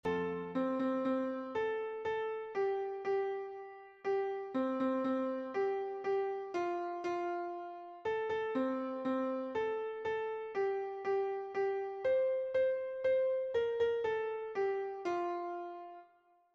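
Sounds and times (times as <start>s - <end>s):
piano piece: 0.0s - 16.5s.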